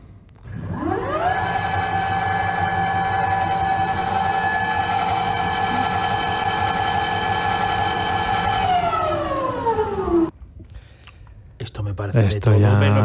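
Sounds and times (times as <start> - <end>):
electric motorcycle high-pitched motor whine: 0.4 - 10.3
speech: 12.2 - 13.0.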